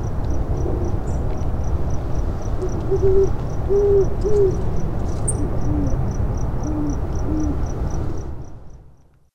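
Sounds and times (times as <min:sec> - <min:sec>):
cricket chirping: 0:00.0 - 0:09.1
Great horned owl giving low muffled hoots: 0:02.6 - 0:04.6, 0:05.3 - 0:06.0, 0:06.6 - 0:08.2.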